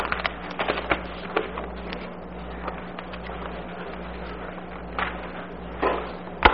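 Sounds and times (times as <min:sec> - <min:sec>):
paper rustling and crinkling as it is picked up and shuffled: 0:00.0 - 0:05.1
low steady hum: 0:00.0 - 0:06.5.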